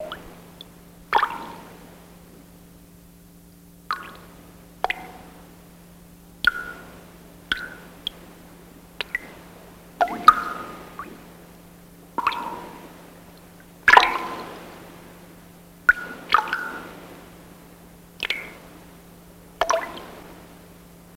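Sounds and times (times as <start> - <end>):
water dripping: 0.0 - 1.8, 3.5 - 14.6, 15.8 - 17.2, 18.1 - 18.8, 19.6 - 20.3.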